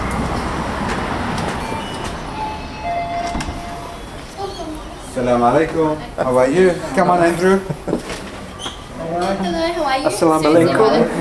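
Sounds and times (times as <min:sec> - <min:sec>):
commuter train rumbling through a station: 0:00.0 - 0:05.2
metallic squeals of a commuter train: 0:01.6 - 0:04.9
speech: 0:05.2 - 0:07.9, 0:09.3 - 0:11.1.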